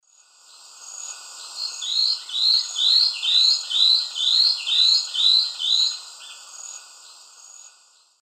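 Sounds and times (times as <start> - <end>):
Myrmotherula hauxwelli song: 1.4 - 7.3.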